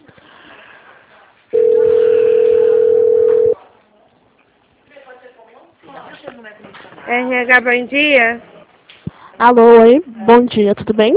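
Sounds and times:
telephone dial tone while placing a call to city hall: 0:01.6 - 0:03.6
speech: 0:07.1 - 0:08.5, 0:09.4 - 0:11.1.

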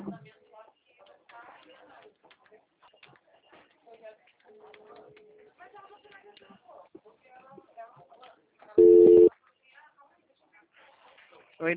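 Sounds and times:
quiet talk: 0:00.0 - 0:11.7
outgoing video call ringing tone on a phone: 0:08.8 - 0:09.3.

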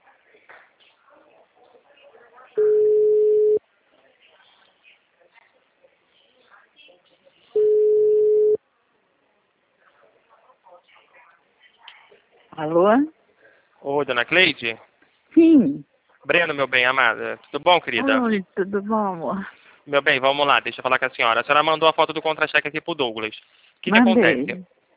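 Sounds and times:
faint sounds: 0:00.0 - 0:24.9
telephone ringback tone while a call is placed: 0:07.6 - 0:08.6
speech: 0:12.6 - 0:13.1, 0:13.8 - 0:24.8.

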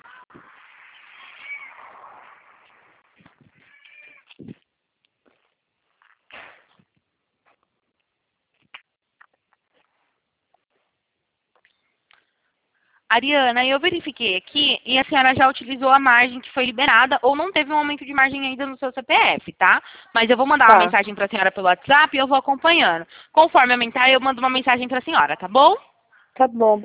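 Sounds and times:
cat meowing: 0:01.1 - 0:01.8, 0:03.5 - 0:04.4
speech: 0:13.1 - 0:26.8.

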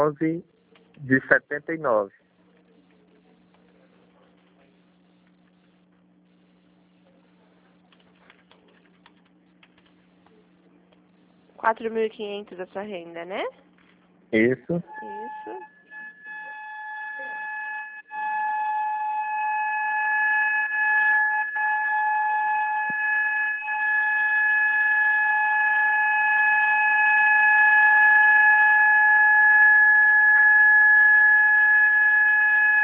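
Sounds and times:
speech: 0:00.0 - 0:02.3, 0:11.6 - 0:13.6, 0:14.3 - 0:15.7
siren with steady pitch tone: 0:14.8 - 0:32.8.

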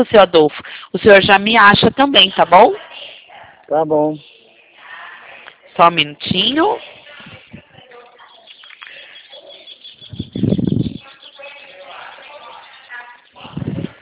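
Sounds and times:
speech: 0:00.0 - 0:02.9, 0:03.7 - 0:04.3, 0:05.8 - 0:06.9
birds singing near a house porch over a phone line: 0:07.8 - 0:13.4.

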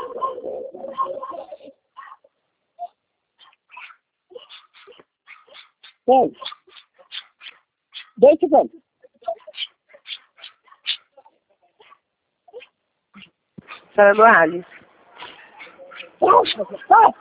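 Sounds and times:
dog barking: 0:00.0 - 0:02.3, 0:03.4 - 0:08.2, 0:09.2 - 0:11.2, 0:11.8 - 0:17.1
dog yipping and whimpering: 0:00.0 - 0:08.2, 0:09.2 - 0:14.3, 0:15.2 - 0:17.1
speech: 0:06.1 - 0:06.5, 0:08.2 - 0:08.8, 0:14.0 - 0:14.7, 0:16.6 - 0:17.1.

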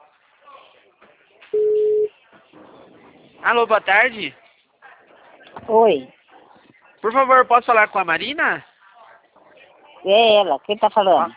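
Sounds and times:
telephone busy tone after a dropped call: 0:01.6 - 0:02.1
speech: 0:03.4 - 0:04.4, 0:05.7 - 0:06.2, 0:07.0 - 0:08.7, 0:10.0 - 0:11.3.

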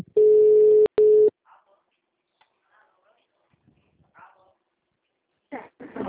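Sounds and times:
person answering phone: 0:00.0 - 0:01.3
telephone ringing tone on an outgoing call: 0:00.2 - 0:01.3.

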